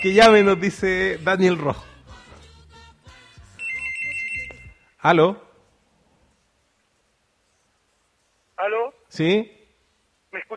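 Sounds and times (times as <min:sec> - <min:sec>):
telephone ringing with an incoming call: 0:00.0 - 0:00.8, 0:03.6 - 0:04.9
speech: 0:00.0 - 0:01.9, 0:05.0 - 0:05.4, 0:08.6 - 0:09.6.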